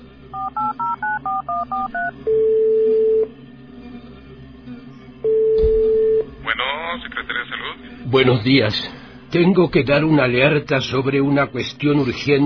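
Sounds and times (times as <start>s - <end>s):
long steady mobile phone tone: 0.3s - 3.3s, 5.2s - 6.3s
mobile phone keypad tones: 0.4s - 3.2s
speech: 7.7s - 12.4s.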